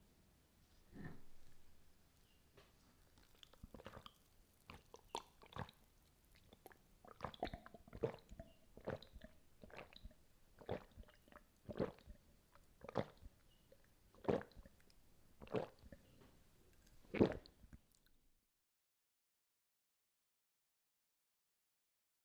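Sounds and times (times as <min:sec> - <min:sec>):
person drinking water: 0:03.1 - 0:18.2.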